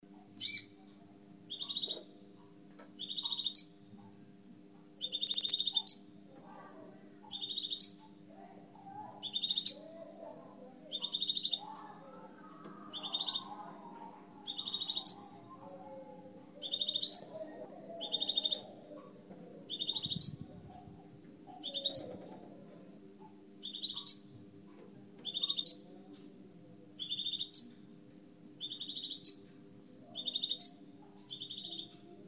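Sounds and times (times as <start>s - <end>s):
crimson sunbird calling: 0.4s - 0.8s, 1.5s - 2.1s, 3.0s - 3.8s, 5.0s - 6.1s, 7.3s - 8.2s, 9.0s - 10.3s, 10.9s - 19.1s, 19.7s - 22.2s, 23.6s - 24.3s, 25.2s - 25.9s, 27.0s - 27.8s, 30.2s - 32.0s.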